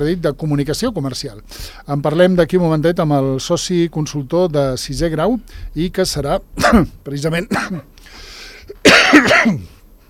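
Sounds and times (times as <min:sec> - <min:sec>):
speech: 0:00.0 - 0:08.2, 0:08.8 - 0:09.7
harsh cough: 0:06.6 - 0:07.9, 0:08.7 - 0:09.8.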